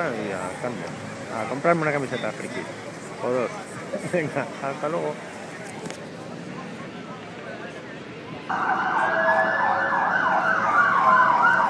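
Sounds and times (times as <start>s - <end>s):
speech: 0.0s - 6.0s, 8.5s - 9.8s
steady hum of street traffic: 0.0s - 11.6s
emergency vehicle siren in a London street: 8.5s - 11.6s.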